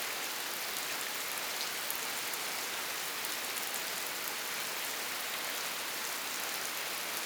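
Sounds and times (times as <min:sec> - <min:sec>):
rain: 0:00.0 - 0:07.2.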